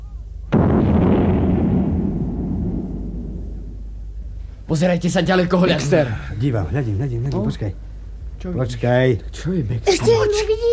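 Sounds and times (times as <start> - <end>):
cannon shot fired after loading: 0.5 - 4.2
speech: 4.7 - 10.7.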